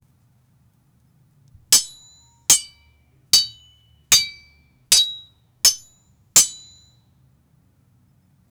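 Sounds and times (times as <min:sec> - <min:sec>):
sword clashing against a shield in battle: 0:01.8 - 0:02.8, 0:03.4 - 0:06.8.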